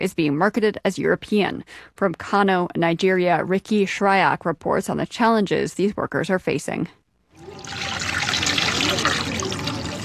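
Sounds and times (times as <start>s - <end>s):
speech: 0.0s - 8.0s
water sloshing as cotton fabric is soaked in a concrete dye pit: 7.4s - 10.0s.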